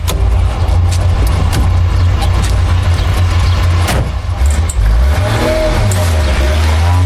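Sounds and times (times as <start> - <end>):
faint clicks and rattles: 0.0 - 4.9
car engine running and revving heard from inside the vehicle: 0.0 - 7.0.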